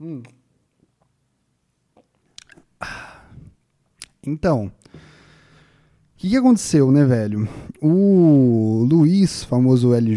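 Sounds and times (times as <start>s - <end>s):
speech: 0.0s - 0.4s, 4.2s - 5.0s, 6.2s - 10.1s
person sipping water: 1.9s - 4.1s.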